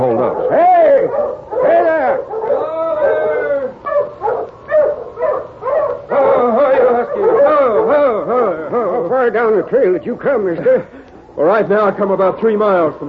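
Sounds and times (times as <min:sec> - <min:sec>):
pack of sled dogs barking and yipping excitedly: 0:00.0 - 0:09.7
laughter: 0:06.1 - 0:09.6, 0:10.2 - 0:11.1
speech: 0:09.7 - 0:10.8, 0:11.4 - 0:13.0.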